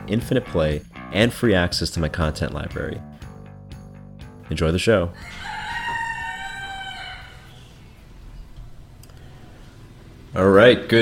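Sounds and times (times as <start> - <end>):
speech: 0.1 - 3.1, 4.5 - 5.5, 10.4 - 11.0
rooster crowing: 5.2 - 7.9.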